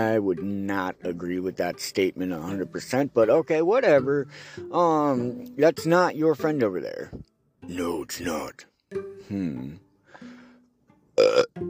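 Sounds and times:
speech: 0:00.0 - 0:09.8, 0:11.2 - 0:11.6
drawn-out croaky burp: 0:11.2 - 0:11.6.

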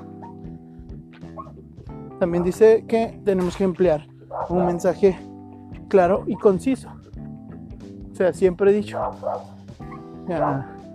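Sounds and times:
dogs barking in the street: 0:00.0 - 0:00.6, 0:01.2 - 0:01.6, 0:02.2 - 0:02.7, 0:04.2 - 0:05.2, 0:06.1 - 0:07.1, 0:08.8 - 0:10.8
speech: 0:01.4 - 0:05.3, 0:05.9 - 0:07.0, 0:08.2 - 0:09.5, 0:10.3 - 0:10.7.

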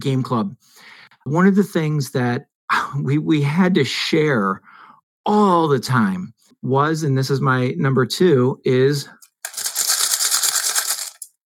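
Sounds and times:
speech: 0:00.0 - 0:09.2
dice rattling inside a mug: 0:09.2 - 0:11.4.

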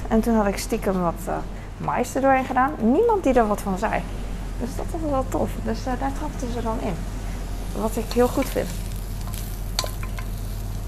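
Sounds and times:
low constant hum: 0:00.0 - 0:10.8
speech: 0:00.1 - 0:07.2, 0:07.8 - 0:08.8
onions frying in a pan: 0:07.1 - 0:10.8.

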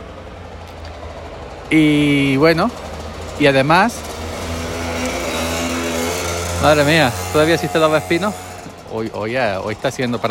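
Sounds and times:
speech: 0:01.7 - 0:02.8, 0:03.4 - 0:04.1, 0:06.6 - 0:10.2
motor vehicle drone on a street: 0:04.2 - 0:08.9.

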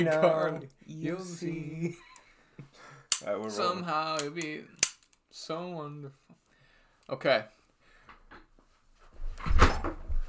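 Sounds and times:
speech: 0:00.0 - 0:02.1, 0:02.7 - 0:06.4, 0:07.1 - 0:07.6
person dropping into a chair: 0:09.2 - 0:10.2.

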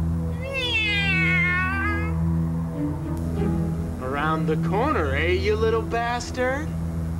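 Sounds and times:
steady low hum: 0:00.0 - 0:07.1
cat meowing: 0:00.2 - 0:02.2
speech: 0:04.5 - 0:06.8.

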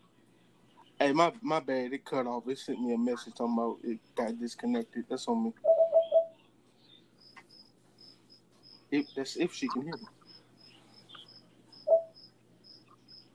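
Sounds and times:
low hum: 0:00.0 - 0:13.3
speech: 0:01.1 - 0:05.7, 0:08.9 - 0:10.2
crickets chirping: 0:05.4 - 0:13.3.

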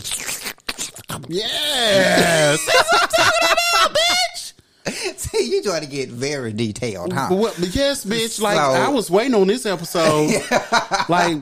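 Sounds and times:
voice imitating wet slurping and sucking noises: 0:00.0 - 0:02.6
speech: 0:01.2 - 0:03.2, 0:05.6 - 0:11.3
laughter: 0:02.0 - 0:05.3, 0:10.0 - 0:11.3.

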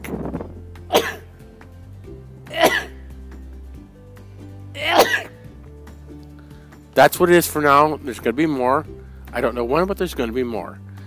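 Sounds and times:
sharp sneezes: 0:00.9 - 0:01.3, 0:02.5 - 0:03.0, 0:04.8 - 0:05.4
speech: 0:07.0 - 0:10.9.

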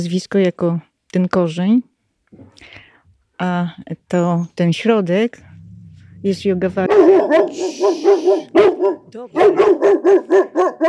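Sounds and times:
speech: 0:00.0 - 0:02.8, 0:03.4 - 0:05.5, 0:06.2 - 0:10.8
dog barking: 0:06.7 - 0:10.8.

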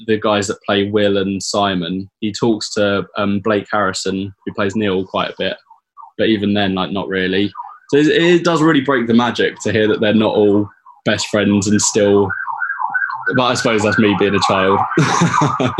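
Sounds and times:
speech: 0:00.0 - 0:05.6, 0:06.2 - 0:12.4, 0:13.3 - 0:15.7
wailing siren passing outside an open window: 0:04.2 - 0:15.7
person laughing: 0:14.9 - 0:15.7.

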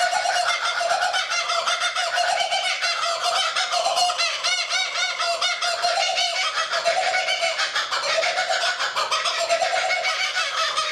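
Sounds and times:
kookaburra raucous laughing call: 0:00.0 - 0:10.9.

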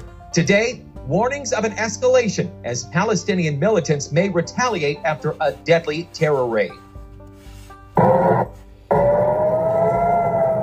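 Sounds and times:
speech: 0:00.4 - 0:06.8
rocket warning siren wailing in Ashkelon, Israel: 0:08.0 - 0:10.6.

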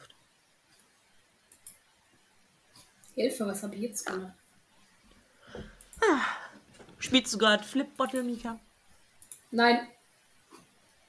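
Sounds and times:
quiet hiss: 0:00.0 - 0:11.0
faint sharp computer mouse clicks: 0:01.5 - 0:01.9, 0:09.1 - 0:09.5
speech: 0:03.2 - 0:04.4, 0:07.1 - 0:08.7, 0:09.5 - 0:10.0.

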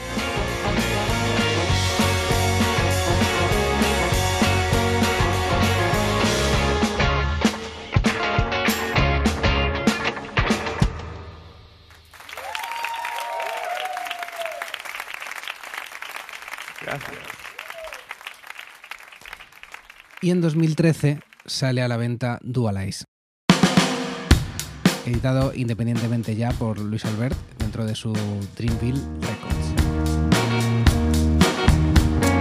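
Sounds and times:
full band playing a song: 0:00.0 - 0:11.1, 0:23.5 - 0:32.4
crowd applause: 0:12.0 - 0:21.5
speech: 0:20.3 - 0:23.1, 0:25.0 - 0:29.4
sharp drum hits: 0:23.5 - 0:25.5.

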